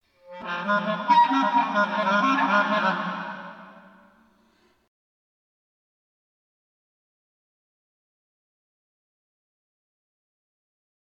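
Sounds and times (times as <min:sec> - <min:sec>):
clarinet phrase: 0:00.2 - 0:04.3.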